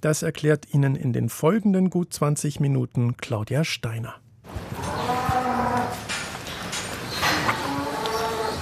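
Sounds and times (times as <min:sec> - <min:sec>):
speech: 0:00.0 - 0:04.8
several cows mooing in a barn: 0:04.7 - 0:06.1, 0:07.2 - 0:08.6.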